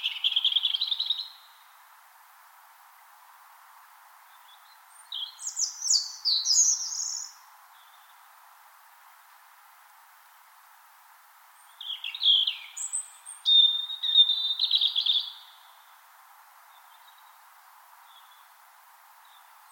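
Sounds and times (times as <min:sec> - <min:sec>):
European robin singing in Finland: 0:00.0 - 0:01.8, 0:04.3 - 0:08.3, 0:11.6 - 0:16.0, 0:18.0 - 0:18.6
faint constant hiss: 0:00.0 - 0:19.7.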